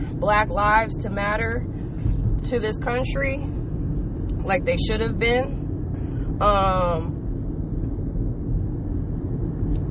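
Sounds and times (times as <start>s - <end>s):
car interior rumble while driving: 0.0s - 9.8s
speech: 0.2s - 1.8s, 2.4s - 3.5s, 4.5s - 5.6s, 6.4s - 7.2s.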